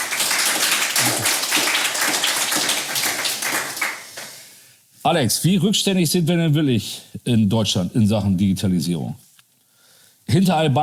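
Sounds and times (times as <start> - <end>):
crowd applauding: 0.0 - 4.4
speech: 5.1 - 9.3, 10.3 - 10.8.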